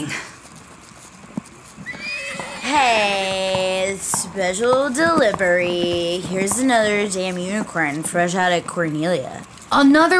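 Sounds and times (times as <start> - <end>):
speech: 0.0 - 0.3, 2.7 - 10.1
faint noise: 0.0 - 10.1
horse hooves clopping: 0.0 - 10.1
horse whinnying: 1.8 - 4.3.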